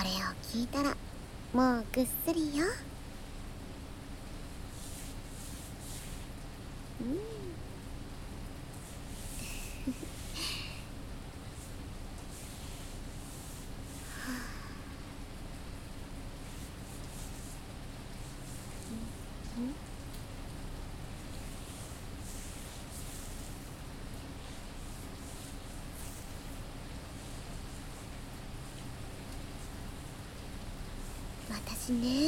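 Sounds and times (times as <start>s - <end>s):
speech: 0.0s - 2.9s, 7.0s - 7.3s
steady rain falling: 0.0s - 32.2s.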